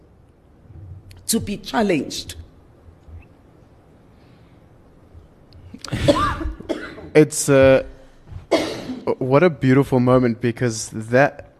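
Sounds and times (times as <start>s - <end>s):
speech: 1.3s - 2.4s, 7.2s - 8.0s, 9.3s - 11.5s
woman coughing: 5.9s - 7.2s, 8.5s - 9.2s.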